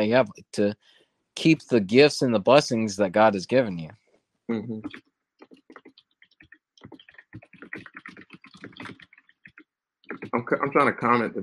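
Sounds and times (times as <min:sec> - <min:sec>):
speech: 0:00.0 - 0:05.1, 0:10.3 - 0:11.4
typing on a computer keyboard: 0:05.4 - 0:10.3.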